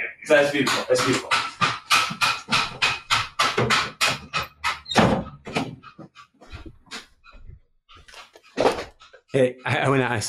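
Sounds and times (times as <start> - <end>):
speech: 0.3 - 1.5, 9.3 - 10.2
meat being pounded with heavy thuds: 0.6 - 5.6.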